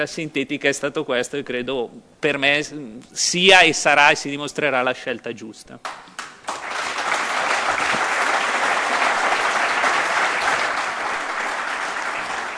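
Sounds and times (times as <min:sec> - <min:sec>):
speech: 0:00.0 - 0:06.2
sustained spontaneous audience applause: 0:06.2 - 0:12.5.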